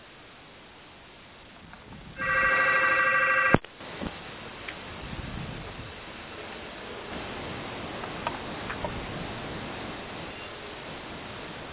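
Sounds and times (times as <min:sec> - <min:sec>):
faint hiss of noise: 0:00.0 - 0:11.7
electronic telephone ring from a phone call in a hotel room: 0:02.2 - 0:03.6.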